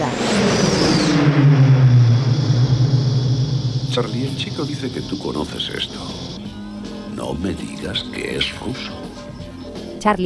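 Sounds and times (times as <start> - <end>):
car engine drone: 0.0 - 9.9
car road rumble: 0.0 - 10.0
speech: 4.0 - 6.2, 7.2 - 9.0, 10.0 - 10.2.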